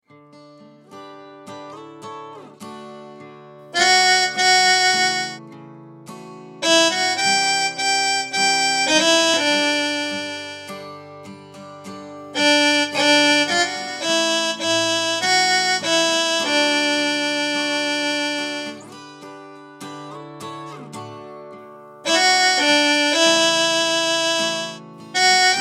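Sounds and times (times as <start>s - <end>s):
instrumental viola playing: 3.8s - 5.4s, 6.6s - 10.8s, 12.4s - 18.9s, 22.1s - 25.6s.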